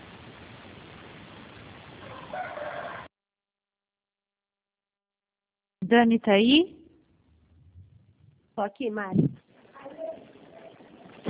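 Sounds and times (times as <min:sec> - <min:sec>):
steady hiss: 0:00.0 - 0:03.1, 0:05.8 - 0:11.2
neighbor's rooster crowing: 0:02.0 - 0:03.1
speech: 0:05.9 - 0:06.8, 0:08.6 - 0:09.4.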